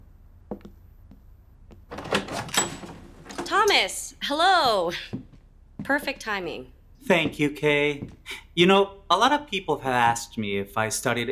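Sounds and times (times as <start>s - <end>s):
door latch clicks: 1.9s - 3.5s
door handle rattling: 1.9s - 3.9s
speech: 3.6s - 5.2s, 5.9s - 11.2s.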